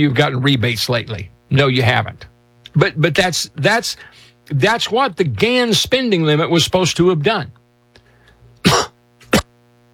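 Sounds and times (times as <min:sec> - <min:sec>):
speech: 0:00.0 - 0:07.6
faint low hum: 0:00.0 - 0:09.9
coughs: 0:08.6 - 0:09.5.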